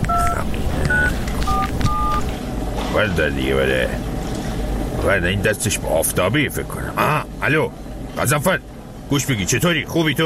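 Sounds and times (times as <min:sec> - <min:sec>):
telephone keypad tones dialling a number: 0:00.1 - 0:02.3
speech: 0:03.0 - 0:04.1, 0:05.0 - 0:10.2.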